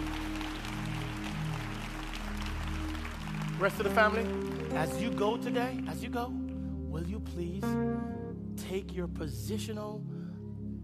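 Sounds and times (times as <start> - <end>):
large crowd applauding at a church service: 0.0 - 6.4
sustained low organ or keyboard chords: 0.0 - 10.8
speech: 3.6 - 6.4, 7.0 - 10.2.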